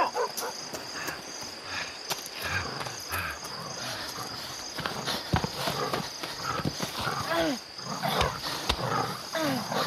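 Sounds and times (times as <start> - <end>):
crickets chirping: 0.0 - 9.8
dog snarling: 5.0 - 9.8
dog growling: 5.6 - 9.8.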